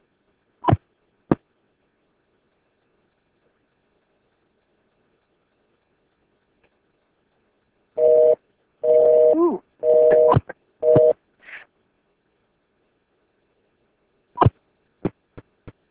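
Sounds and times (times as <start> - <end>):
buzzing telephone busy tone: 8.0 - 11.2
sharp clicks on a phone line: 9.9 - 11.2.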